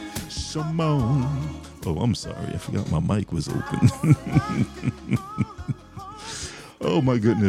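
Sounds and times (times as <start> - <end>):
speech: 0.5 - 5.8, 6.8 - 7.4
laughter: 3.5 - 6.4
heartbeat thumping: 3.8 - 6.0.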